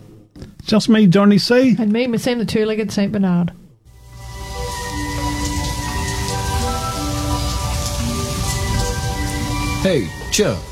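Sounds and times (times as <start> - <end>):
speech: 0.7 - 3.6, 9.8 - 10.6
heavy rain spattering on surfaces: 4.0 - 10.6.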